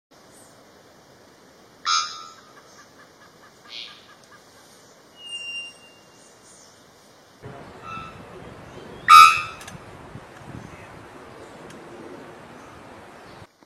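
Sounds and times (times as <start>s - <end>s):
Nicaraguan bellbird calling: 1.8s - 6.6s, 7.4s - 13.5s.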